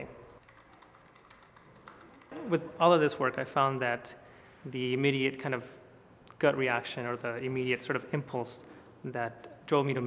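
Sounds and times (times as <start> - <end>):
computer keyboard typing: 0.0 - 3.2
speech: 2.4 - 5.8, 6.4 - 10.0.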